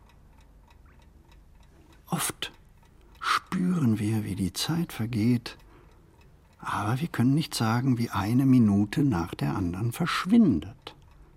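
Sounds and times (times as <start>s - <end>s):
clock ticking: 0.0s - 11.3s
low hum: 0.0s - 11.3s
speech: 3.6s - 5.6s, 6.6s - 10.9s.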